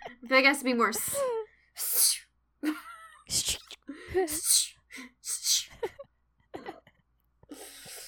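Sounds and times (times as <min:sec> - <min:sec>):
speech: 0:00.3 - 0:01.4, 0:04.1 - 0:04.6
voice imitating a snake sneezing: 0:03.3 - 0:05.8.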